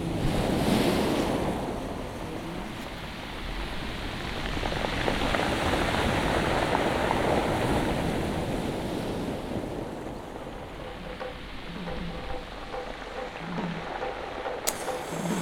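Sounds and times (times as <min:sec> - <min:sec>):
heavy stormy ocean surf crashing onto a shore: 0:00.0 - 0:15.4
wind buffeting the microphone: 0:00.0 - 0:15.4.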